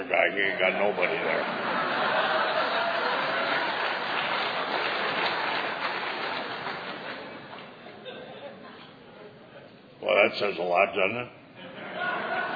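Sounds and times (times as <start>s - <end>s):
speech: 0.0s - 1.8s, 10.3s - 11.4s
laughter: 0.4s - 9.4s, 11.6s - 12.5s
sizable audience clapping: 0.9s - 7.8s.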